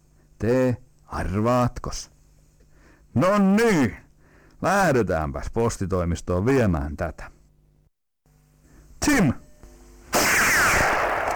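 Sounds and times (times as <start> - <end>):
speech: 0.4 - 2.2, 3.1 - 4.0, 4.6 - 7.3, 9.0 - 9.4
single loud gunshot with ringing tail: 10.1 - 11.3.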